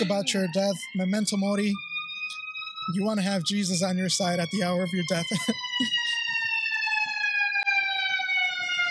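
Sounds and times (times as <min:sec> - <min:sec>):
speech: 0:00.0 - 0:01.9, 0:02.9 - 0:06.0
fire truck siren wailing as it passes: 0:00.0 - 0:08.8.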